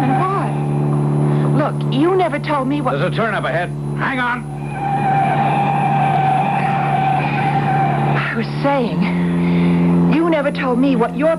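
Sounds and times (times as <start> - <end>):
continuous rumble of a moving car: 0.0 - 11.3
police patrol car siren: 0.0 - 11.3
speech: 1.9 - 5.2, 8.4 - 9.8, 10.4 - 11.3.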